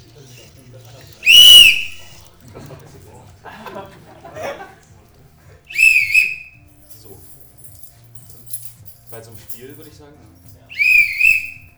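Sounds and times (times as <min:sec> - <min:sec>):
people chuckling: 0:00.0 - 0:11.6
soft voices: 0:00.0 - 0:11.7
referee's whistle blasts: 0:01.2 - 0:02.3, 0:05.7 - 0:06.7, 0:10.7 - 0:11.7
speech: 0:09.2 - 0:10.5.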